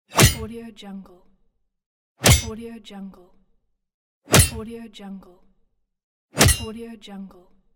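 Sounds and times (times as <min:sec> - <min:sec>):
crowbar hit game sound effect: 0:00.2 - 0:00.5, 0:02.2 - 0:02.5, 0:04.3 - 0:04.6, 0:06.4 - 0:06.7.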